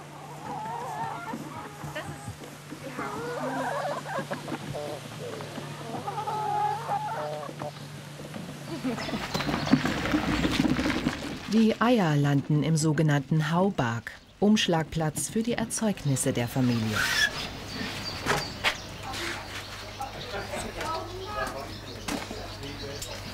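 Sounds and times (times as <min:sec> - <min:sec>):
chickens clucking in an automated solar-powered mobile henhouse: 0:00.0 - 0:11.4, 0:15.0 - 0:23.3
speech: 0:11.6 - 0:17.3.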